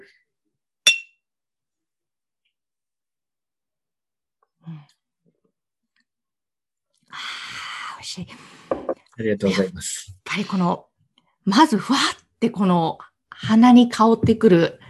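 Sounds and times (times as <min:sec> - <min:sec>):
sake glasses clinking in a toast: 0:00.9 - 0:01.2
speech: 0:08.0 - 0:08.6, 0:09.2 - 0:14.8.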